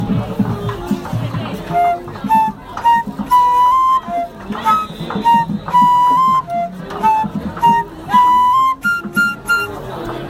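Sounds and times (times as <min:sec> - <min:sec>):
flute: 0:00.0 - 0:10.2.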